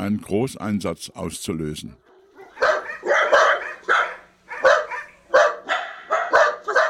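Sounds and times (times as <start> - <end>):
speech: 0.0 - 2.0
dachshund barking: 2.0 - 6.8.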